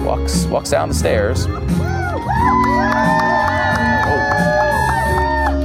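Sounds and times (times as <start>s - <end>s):
speech: 0.1s - 3.2s
large crowd cheering at a rally entrance: 1.5s - 5.6s.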